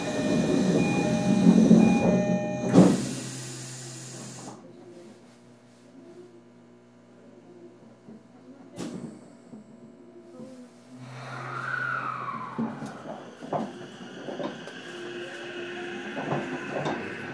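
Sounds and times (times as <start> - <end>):
commuter train departing from platform after doors close: 0.0 - 4.5, 11.0 - 17.3.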